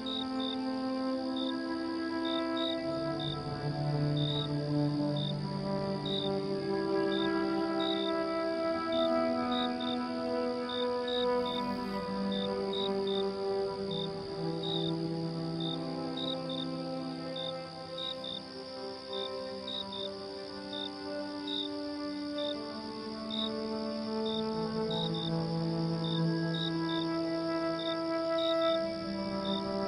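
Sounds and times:
crickets trilling at night: 0.0s - 29.8s
soft low music in long held notes: 0.0s - 29.8s.

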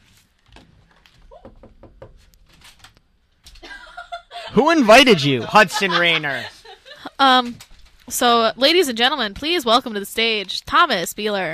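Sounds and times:
sharp raps on a door: 1.4s - 2.2s
laughter: 3.6s - 7.2s
speech: 4.6s - 6.6s, 7.2s - 11.5s.

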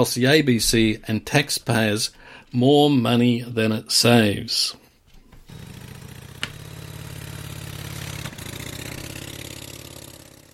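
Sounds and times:
speech: 0.0s - 4.8s
Harley Davidson 1200 Sportster motorcycle engine idling: 5.5s - 10.5s.

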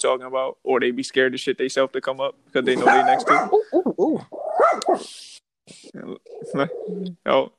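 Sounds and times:
speech: 0.0s - 7.5s
dog barking and yelping angrily at a person: 2.7s - 5.2s.

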